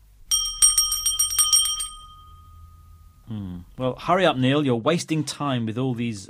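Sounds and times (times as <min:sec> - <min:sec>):
bicycle bell ringing rapidly: 0:00.3 - 0:03.4
speech: 0:03.3 - 0:06.2.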